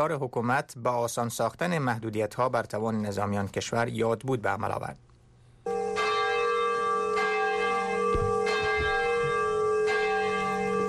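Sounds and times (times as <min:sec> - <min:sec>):
speech: 0:00.0 - 0:05.1
large bell ringing at Nagasaki atomic bombing memorial ceremony: 0:05.7 - 0:10.8.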